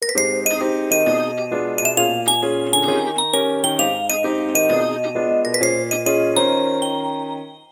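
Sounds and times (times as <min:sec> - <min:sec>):
ringtone: 0:00.0 - 0:07.7.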